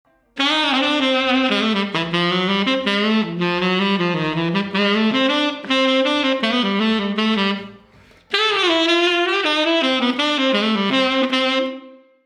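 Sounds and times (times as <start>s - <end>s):
tenor saxophone: 0.1s - 12.2s.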